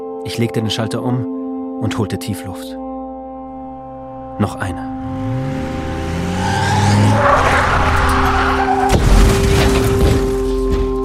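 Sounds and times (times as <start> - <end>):
speech: 0.2 - 2.8, 4.4 - 5.3
road noise: 3.7 - 9.9
SUV tire bursting with a loud bang: 5.0 - 10.5
SUV tires squealing in a sustained skid: 5.2 - 9.6
SUV crashing into a restaurant wall: 7.1 - 11.0.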